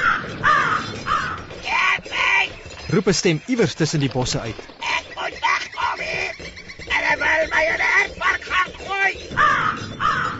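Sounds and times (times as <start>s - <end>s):
crow cawing in harsh ragged calls: 0.0s - 2.3s, 4.8s - 10.3s
speech: 2.9s - 4.8s.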